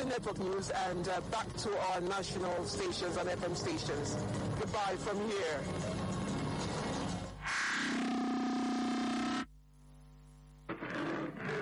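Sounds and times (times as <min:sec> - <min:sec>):
speech: 0:00.1 - 0:06.0
harsh noise: 0:03.8 - 0:09.5, 0:10.7 - 0:11.6
lion roaring: 0:10.7 - 0:11.6.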